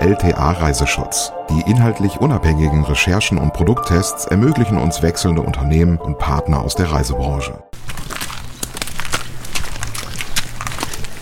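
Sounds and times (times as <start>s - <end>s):
speech: 0.0s - 7.6s
horse walking slowly with hooves clip-clopping: 7.8s - 11.2s.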